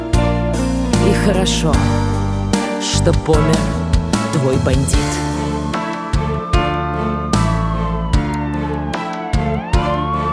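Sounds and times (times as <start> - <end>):
steady music: 0.0 - 10.3
speech: 1.2 - 2.2, 2.8 - 3.8, 4.4 - 5.2
police siren wailing: 5.4 - 10.3.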